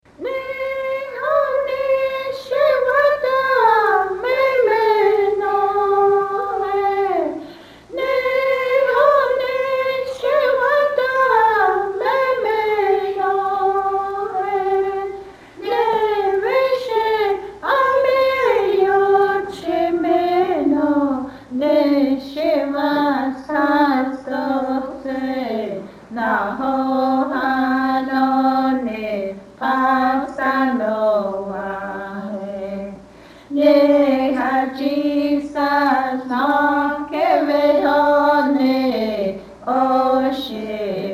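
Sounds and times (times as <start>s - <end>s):
hymnbook songs in Cheyenne language: 0.1s - 41.1s.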